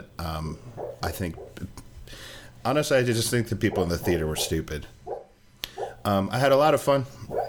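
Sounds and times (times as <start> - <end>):
speech: 0.2 - 5.0, 6.0 - 7.3
dog whimpering in its sleep: 0.8 - 1.6, 3.6 - 6.0.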